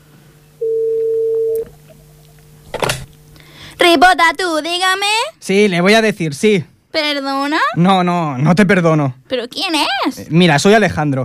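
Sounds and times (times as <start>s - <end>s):
telephone line ringing while placing a call: 0.6s - 1.6s
speech: 3.8s - 11.2s.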